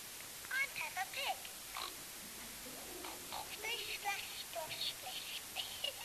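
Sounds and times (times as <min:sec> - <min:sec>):
hiss: 0:00.0 - 0:06.0
talking toy pig voice: 0:00.5 - 0:01.9, 0:03.0 - 0:06.0
squeaky pig-like oinks from a talking toy pig: 0:01.8 - 0:02.0, 0:03.0 - 0:03.6.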